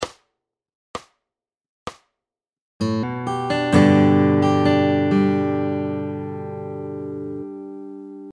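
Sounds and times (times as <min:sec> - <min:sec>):
fingerstyle guitar chords: 0:02.8 - 0:08.3.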